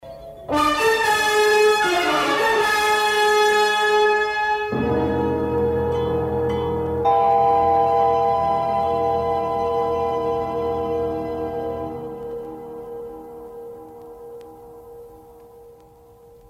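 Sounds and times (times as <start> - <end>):
UFO background music: 0.0 - 16.4.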